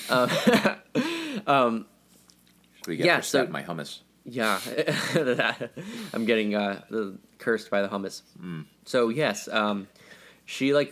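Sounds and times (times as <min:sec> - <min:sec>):
speech: 0:00.1 - 0:00.8, 0:01.5 - 0:01.9, 0:02.8 - 0:10.8
person coughing and choking with a carrot stuck in the throat: 0:00.2 - 0:01.1.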